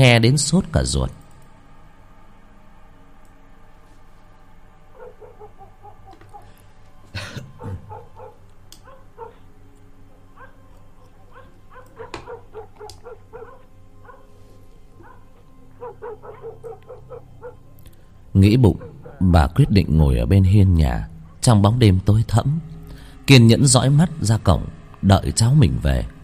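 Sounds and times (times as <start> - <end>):
speech: 0.0 - 1.2, 18.4 - 22.7, 23.3 - 26.2
low hum: 0.0 - 26.2
dogs barking and yelping in the distance at night: 4.8 - 19.6.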